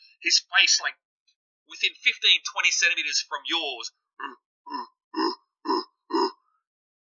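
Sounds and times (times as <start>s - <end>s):
speech: 0.2s - 1.1s, 1.7s - 5.3s
deep throaty grunts from a huge ape-like creature: 4.2s - 6.4s.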